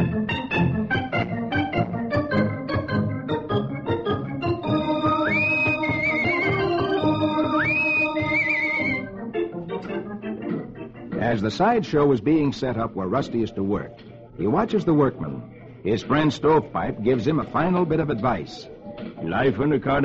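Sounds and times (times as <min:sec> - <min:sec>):
lively orchestral theme with bouncing strings and brass: 0:00.0 - 0:12.1
speech: 0:11.4 - 0:20.0.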